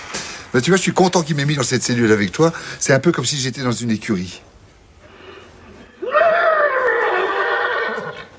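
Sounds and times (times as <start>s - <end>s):
speech: 0.5s - 4.6s
person imitating a thirsty horse neighing: 5.9s - 8.3s.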